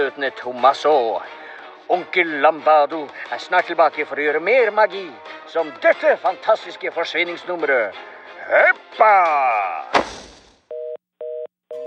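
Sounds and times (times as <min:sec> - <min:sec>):
speech: 0:00.0 - 0:10.2
telephone line tone of an outgoing call: 0:10.7 - 0:11.8.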